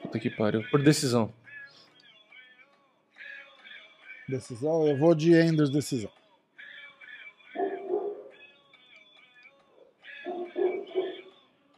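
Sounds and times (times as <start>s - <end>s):
speech: 0.1s - 1.4s, 4.3s - 6.2s
dog barking: 7.6s - 8.4s, 9.8s - 11.3s.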